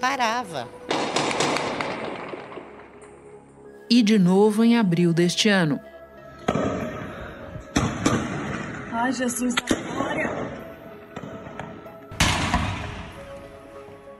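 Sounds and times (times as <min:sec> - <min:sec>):
speech: 0:00.0 - 0:02.0, 0:03.9 - 0:05.9, 0:09.0 - 0:10.5
gunshots during an attack on banks: 0:00.9 - 0:02.9, 0:07.7 - 0:08.8, 0:12.2 - 0:13.2.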